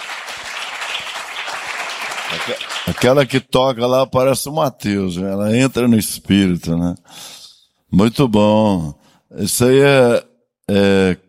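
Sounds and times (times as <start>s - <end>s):
crowd applauding at a church worship gathering: 0.0s - 3.4s
speech: 2.3s - 7.2s, 7.9s - 11.2s.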